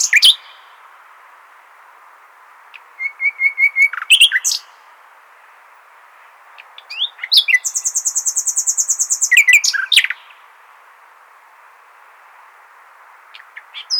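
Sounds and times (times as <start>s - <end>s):
common nightingale Luscinia megarhynchos singing: 0.0s - 0.7s, 2.7s - 4.8s, 6.5s - 10.4s, 13.3s - 13.9s.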